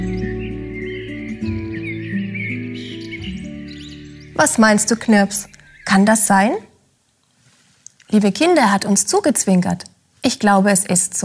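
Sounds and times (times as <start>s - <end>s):
birds singing cheerful morning song: 0.0s - 6.6s
speech: 4.4s - 6.7s, 8.1s - 11.2s.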